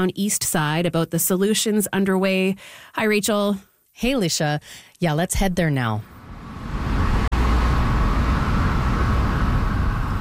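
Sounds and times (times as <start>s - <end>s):
speech: 0.0s - 6.8s
street traffic from trucks and cars outside a downtown building: 6.0s - 10.1s.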